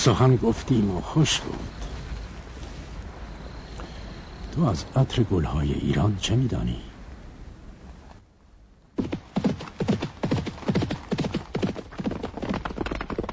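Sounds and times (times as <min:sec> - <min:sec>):
speech: 0:00.0 - 0:01.8, 0:04.6 - 0:06.9
horse hooves clip-clopping as it is led by the reins: 0:09.0 - 0:13.3.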